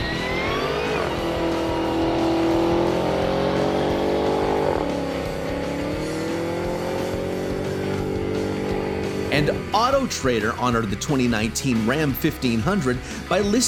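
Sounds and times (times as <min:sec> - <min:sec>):
Demon muscle car engine roaring as it accelerates hard toward 211 mph: 0:00.0 - 0:10.9
speech: 0:09.4 - 0:13.6.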